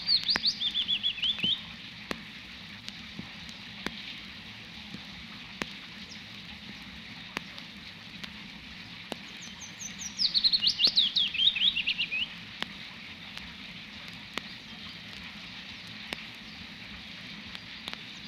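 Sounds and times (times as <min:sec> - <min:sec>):
willow warbler singing: 0:00.0 - 0:01.9, 0:05.6 - 0:07.6, 0:09.1 - 0:12.6, 0:14.3 - 0:18.2
rain drips tapping: 0:00.0 - 0:18.2
steady hiss of spring rain: 0:00.0 - 0:18.2.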